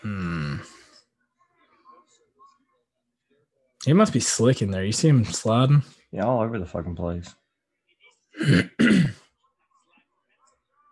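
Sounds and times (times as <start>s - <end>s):
speech: 3.8s - 7.4s, 8.4s - 9.2s
man clearing his throat while watching a fight: 8.4s - 9.2s.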